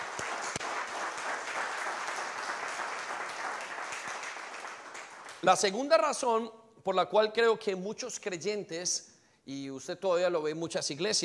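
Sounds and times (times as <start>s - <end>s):
crowd applauding: 0.0s - 5.6s
speech: 5.4s - 11.2s.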